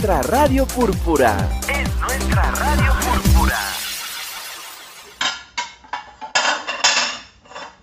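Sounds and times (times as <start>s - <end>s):
speech: 0.0s - 3.7s
running water: 2.4s - 5.3s
dishes clattering in a sink while being washed: 5.2s - 7.8s.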